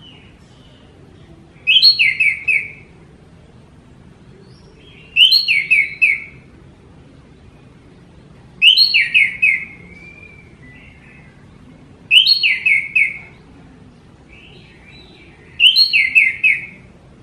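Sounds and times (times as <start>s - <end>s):
Orange-headed thrush singing tumbling whistled phrases: 1.6s - 2.9s, 4.5s - 6.4s, 8.6s - 11.4s, 12.1s - 13.2s, 14.4s - 16.9s.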